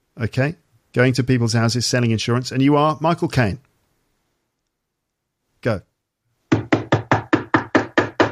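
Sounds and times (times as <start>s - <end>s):
speech: 0.2s - 3.7s, 5.6s - 5.9s
knocking on a door: 6.5s - 8.3s.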